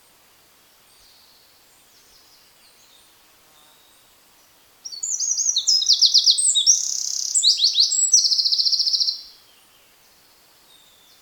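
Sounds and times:
Eurasian wren singing: 4.8 - 9.3.

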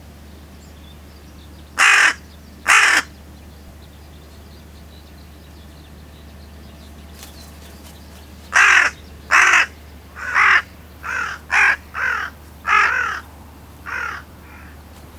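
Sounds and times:
carrion crow Corvus corone giving harsh raspy caws: 1.8 - 3.2, 8.5 - 14.8.

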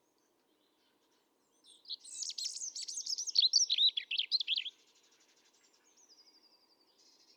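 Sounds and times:
European robin Erithacus rubecula singing: 1.7 - 4.8.

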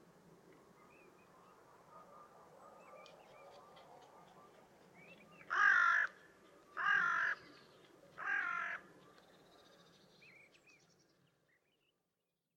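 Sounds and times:
Carrion crow giving harsh hoarse caws: 5.5 - 6.2, 6.8 - 7.4, 8.2 - 8.8.

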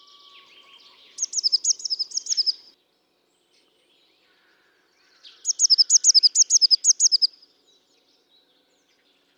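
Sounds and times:
Eurasian blue tit Cyanistes caeruleus calling with rapid high thin notes: 0.1 - 2.7, 5.4 - 7.3.

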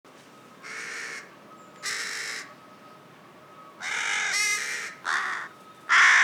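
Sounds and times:
carrion crow Corvus corone cawing: 0.6 - 2.5, 3.8 - 6.2.

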